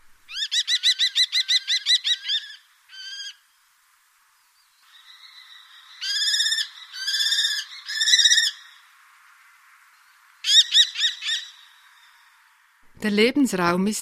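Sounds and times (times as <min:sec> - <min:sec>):
common kestrel calling with shrill kee-kee-kee series: 0:00.3 - 0:03.4, 0:04.8 - 0:08.9, 0:10.4 - 0:12.2
speech: 0:13.0 - 0:14.0.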